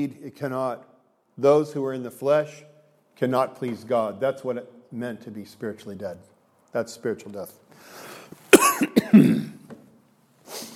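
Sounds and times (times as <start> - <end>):
speech: 0.0 - 8.1
person coughing from pollen irritation: 8.5 - 9.7.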